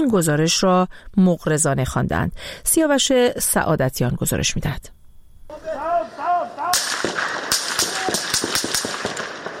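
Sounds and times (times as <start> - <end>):
speech: 0.0 - 5.9
noisy outdoor background: 0.0 - 9.5
raised voice calling out: 5.5 - 6.8
loud gunshots cracking in a rapid irregular volley: 5.6 - 9.5.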